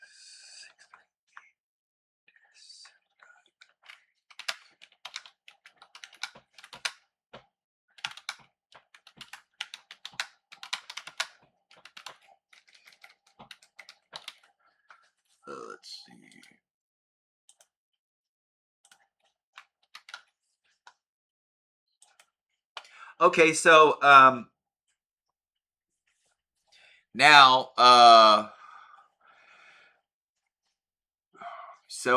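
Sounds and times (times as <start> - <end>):
typing on a computer keyboard: 3.6 - 7.0, 8.0 - 15.1, 18.9 - 20.3
speech: 23.2 - 24.5, 27.2 - 28.5.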